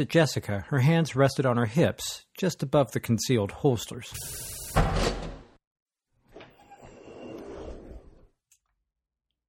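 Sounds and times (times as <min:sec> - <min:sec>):
speech: 0:00.0 - 0:05.2
sliding door rumbling open with a mechanical whir: 0:06.2 - 0:08.3.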